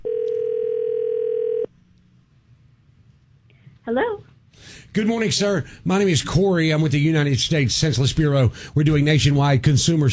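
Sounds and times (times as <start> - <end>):
telephone dial tone: 0.0 - 1.7
speech: 3.9 - 10.1.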